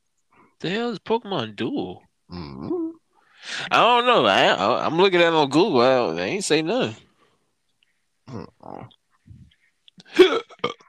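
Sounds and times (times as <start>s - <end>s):
speech: 0.6s - 2.8s, 3.4s - 7.0s, 8.3s - 9.0s
person hiccuping: 2.3s - 3.0s, 8.3s - 9.4s, 10.0s - 10.8s
throaty vocal noises: 2.3s - 3.0s, 8.3s - 10.8s.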